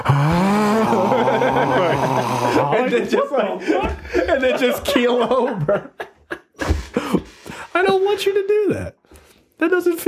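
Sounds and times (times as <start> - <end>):
voice imitating a dying gasp with a raspy groan: 0.0 - 2.8
laughter: 0.4 - 7.5
speech: 2.9 - 6.0, 8.2 - 9.0, 9.6 - 10.0.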